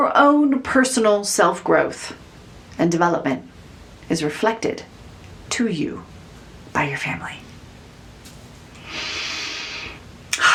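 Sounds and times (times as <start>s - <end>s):
speech: 0.0s - 2.2s, 2.8s - 3.5s, 4.1s - 6.1s, 6.8s - 7.4s
big deep breath: 8.8s - 10.0s.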